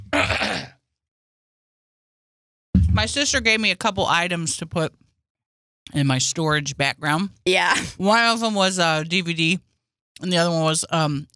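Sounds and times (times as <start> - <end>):
short raspy throat clearing: 0.0 - 0.8
speech: 3.0 - 5.0, 5.9 - 11.3.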